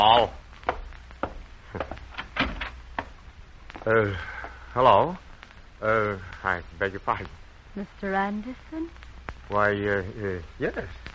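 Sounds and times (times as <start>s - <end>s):
speech: 0.0s - 0.4s, 3.9s - 5.2s, 5.8s - 11.1s
front door latch and frame clunking and rattling: 2.2s - 2.8s.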